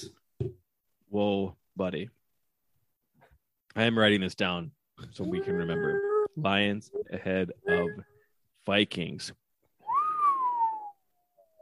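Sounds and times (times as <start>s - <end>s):
speech: 1.2s - 2.2s, 3.8s - 9.4s
person whistling breathy sliding notes: 9.8s - 11.5s.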